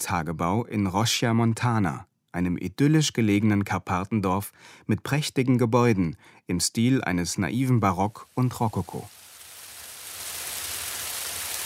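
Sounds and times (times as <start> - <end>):
speech: 0.0 - 9.2
pouring rain on a Carpathian mountain village: 8.1 - 11.6.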